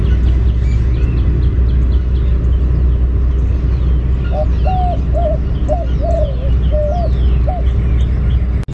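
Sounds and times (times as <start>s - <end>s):
low background rumble: 0.0s - 8.7s
white-winged dove giving advertising coo: 4.3s - 7.8s.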